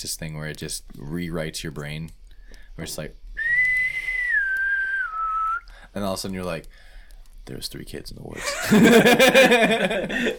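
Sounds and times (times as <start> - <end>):
speech: 0.0 - 2.2, 2.8 - 3.2, 6.0 - 6.8, 7.5 - 10.3
person whistling a long eerie note gliding downward: 3.4 - 5.7
laughter: 8.4 - 10.3.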